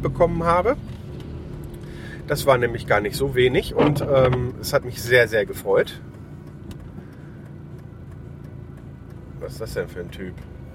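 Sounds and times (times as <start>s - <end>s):
speech: 0.0s - 0.9s, 2.3s - 6.1s, 9.4s - 10.5s
car driving past, engine and road rumble: 0.0s - 10.7s.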